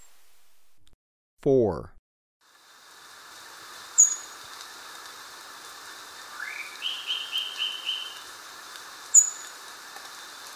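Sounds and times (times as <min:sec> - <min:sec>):
speech: 0:01.4 - 0:02.0
Indigo flowerpiercer twittering song in Ecuador: 0:04.0 - 0:04.4, 0:06.3 - 0:08.2, 0:09.1 - 0:09.5.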